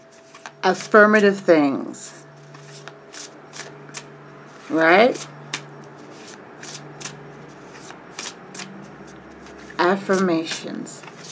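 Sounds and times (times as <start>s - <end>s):
deck of affirmation cards being shuffled: 0.1s - 1.0s, 2.4s - 11.3s
speech: 0.6s - 2.2s, 4.7s - 5.3s, 9.9s - 11.0s.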